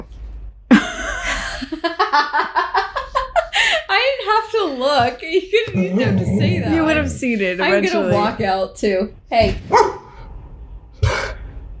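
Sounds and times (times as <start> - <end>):
laughter: 0.7 - 3.9, 5.6 - 8.4
speech: 4.6 - 10.0
dog barking with echo in a reverberant space: 9.7 - 10.2.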